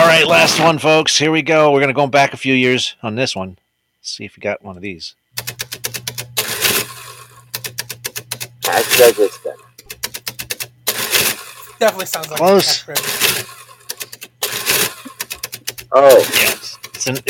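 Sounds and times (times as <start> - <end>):
speech: 0.1 - 5.7, 8.7 - 9.7, 11.8 - 13.6, 15.9 - 17.2
old mechanical adding machine cranking and printing: 5.4 - 17.2
person laughing: 11.7 - 13.1, 14.9 - 17.2.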